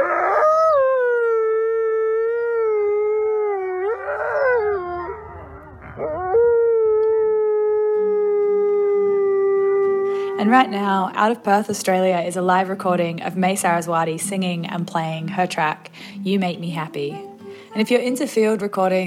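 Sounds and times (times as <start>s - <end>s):
lone she-wolf howling: 0.0s - 10.9s
speech: 10.6s - 19.0s.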